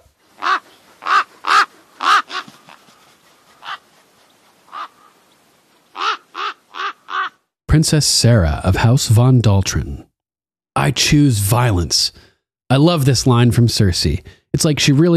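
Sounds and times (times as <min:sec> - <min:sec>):
ravens cawing: 0:00.3 - 0:07.4
speech: 0:07.7 - 0:10.1, 0:10.8 - 0:15.1.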